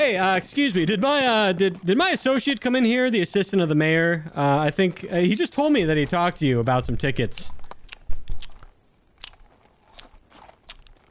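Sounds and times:
speech: 0:00.0 - 0:07.6
voice mimicking chewing and spitting out chewing tobacco: 0:07.8 - 0:11.0.

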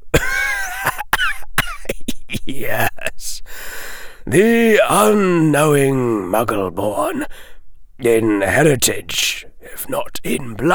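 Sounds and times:
coughing chuckle: 0:00.2 - 0:03.2
speech: 0:02.4 - 0:02.9, 0:04.3 - 0:10.7.

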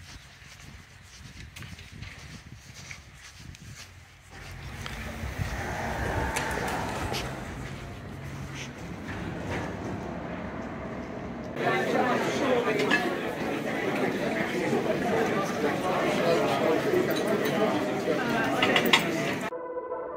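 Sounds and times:
crowd chatter of people congregating at a conference: 0:04.3 - 0:19.5.

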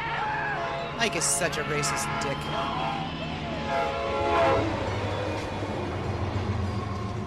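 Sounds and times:
train rolling past with a heavy rumble: 0:00.1 - 0:07.2
train horn droning: 0:00.2 - 0:05.2
speech: 0:01.0 - 0:03.9.

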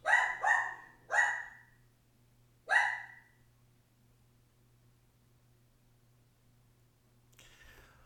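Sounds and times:
dog barking: 0:00.0 - 0:01.8, 0:02.7 - 0:03.4
faint low hum: 0:00.0 - 0:08.0.

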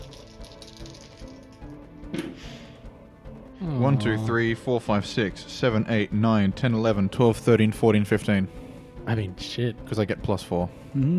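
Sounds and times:
several six-sided dice rolled across a hard surface for damage: 0:00.0 - 0:01.6
speech: 0:03.9 - 0:11.1.

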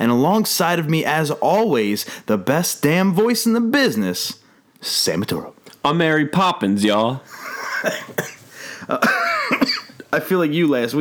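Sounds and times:
speech: 0:00.0 - 0:09.4, 0:10.2 - 0:11.0
person coughing: 0:07.5 - 0:10.1.

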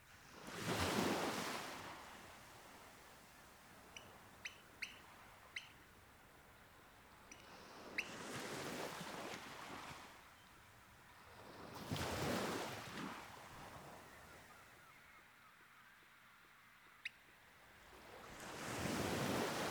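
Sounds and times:
waves breaking on a sandy shoreline: 0:00.0 - 0:04.4, 0:06.3 - 0:10.3, 0:11.2 - 0:14.4, 0:17.8 - 0:19.7
short high bird peeps: 0:03.9 - 0:05.8.

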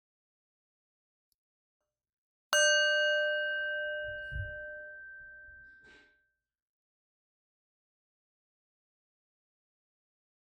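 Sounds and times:
meditation bell struck and ringing: 0:02.6 - 0:06.2.

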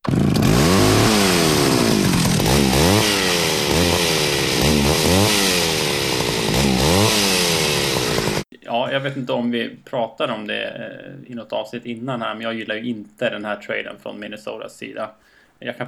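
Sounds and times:
chainsaw revving: 0:00.0 - 0:08.4
speech: 0:09.0 - 0:15.8.

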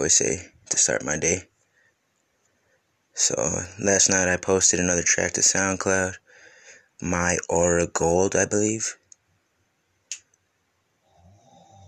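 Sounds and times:
speech: 0:00.0 - 0:01.5, 0:03.2 - 0:06.2, 0:07.0 - 0:09.0
sharp click: 0:10.1 - 0:10.4
snoring heard through a wall: 0:11.0 - 0:11.8.

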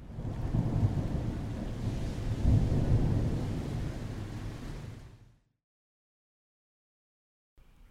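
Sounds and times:
deep rolling thunder: 0:00.0 - 0:05.0
steady rain hiss: 0:00.0 - 0:05.2.

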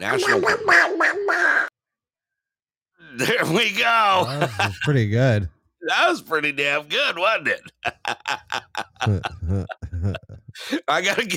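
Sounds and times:
speech: 0:00.0 - 0:01.0, 0:03.2 - 0:11.3
person imitating cartoon duck quacking: 0:00.0 - 0:01.7
laughter: 0:04.1 - 0:05.3, 0:07.4 - 0:11.3.

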